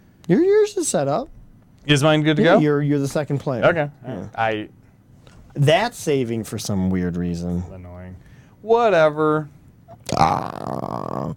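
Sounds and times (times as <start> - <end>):
speech: 0.3 - 4.8, 5.6 - 11.3
long loud gravelly burp: 9.9 - 11.3.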